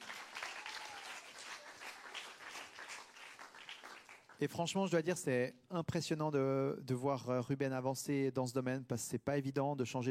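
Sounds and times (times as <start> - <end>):
crowd applauding: 0.0 - 4.5
speech: 4.4 - 10.0.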